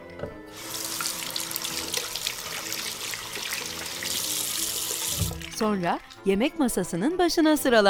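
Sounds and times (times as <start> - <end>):
speech: 0.2 - 0.8, 5.6 - 7.8
water running from a tap into a sink as children wash hands: 0.5 - 6.3.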